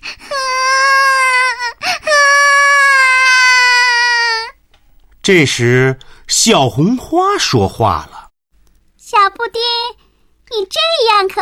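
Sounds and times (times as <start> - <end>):
young child sitting on the floor crying: 0.0 - 4.6
speech: 5.3 - 8.1, 9.1 - 11.4.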